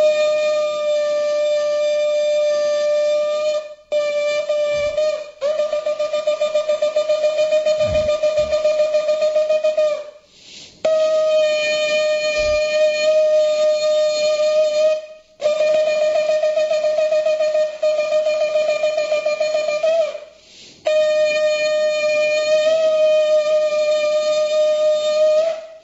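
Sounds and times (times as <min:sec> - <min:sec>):
ram's horn shofar blown in temple after the Torah reading: 0:00.0 - 0:25.8.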